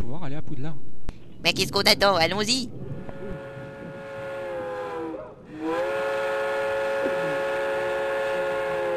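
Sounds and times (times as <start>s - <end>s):
speech: 0.3s - 2.8s
steam train whistle as a train arrives in a video game: 3.2s - 8.9s.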